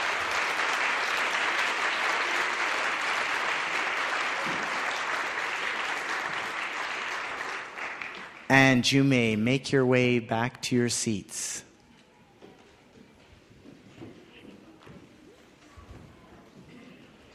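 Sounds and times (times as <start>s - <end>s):
audience applause for children who sang: 0.0s - 8.5s
speech: 8.6s - 11.7s.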